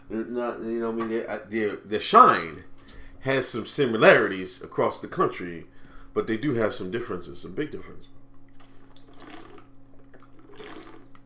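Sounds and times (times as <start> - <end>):
steady low electrical hum: 0.0 - 11.2
speech: 0.1 - 8.2
water gushing from a tap: 8.5 - 11.2.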